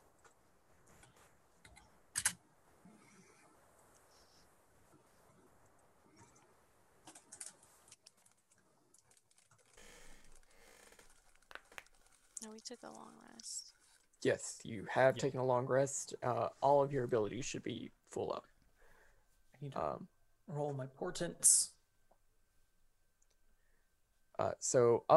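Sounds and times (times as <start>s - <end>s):
crinkling: 4.9s - 14.2s
fingers typing on a computer keyboard: 7.0s - 10.4s
speech: 12.5s - 18.5s, 19.6s - 21.8s, 24.4s - 25.1s.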